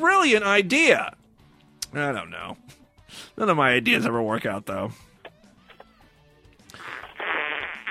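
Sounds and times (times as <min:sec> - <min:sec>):
speech: 0:00.0 - 0:01.2, 0:01.9 - 0:05.1
loud buzzy fart into a phone receiver: 0:06.7 - 0:07.8.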